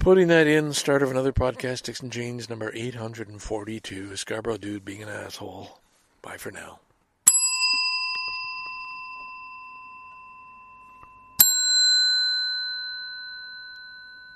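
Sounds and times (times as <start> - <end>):
speech: 0.0 - 6.8
small pink bell ringing: 7.3 - 14.3.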